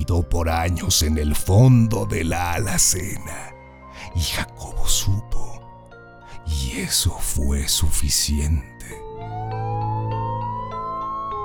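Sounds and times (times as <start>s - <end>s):
speech: 0.0s - 5.5s, 6.5s - 9.0s
ambulance siren wailing: 9.1s - 11.4s.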